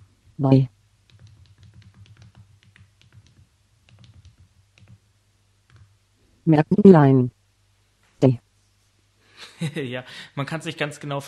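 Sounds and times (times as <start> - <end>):
speech: 0.4 - 0.8, 6.5 - 7.4, 8.2 - 8.4, 9.6 - 11.2
rapid key presses on a mobile phone keypad: 1.1 - 5.0
laughter: 9.4 - 10.8.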